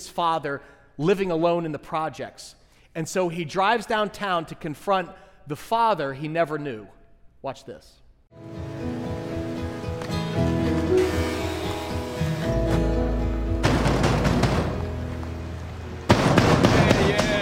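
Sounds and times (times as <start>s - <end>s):
speech: 0.0s - 8.9s
low music: 8.4s - 17.4s
loud rapid pounding on a door: 13.6s - 14.9s, 16.1s - 17.4s.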